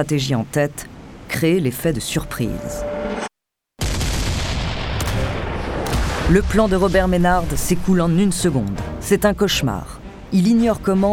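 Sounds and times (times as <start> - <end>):
speech: 0.0 - 3.2, 6.3 - 11.1
heavy pirate cannon fire barrage: 3.8 - 7.7.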